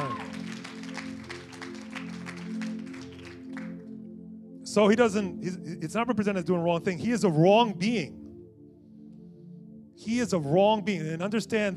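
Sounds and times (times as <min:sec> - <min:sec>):
audience clapping: 0:00.0 - 0:03.8
steady sustained musical tone: 0:00.0 - 0:11.7
speech: 0:04.7 - 0:08.2, 0:10.0 - 0:11.7.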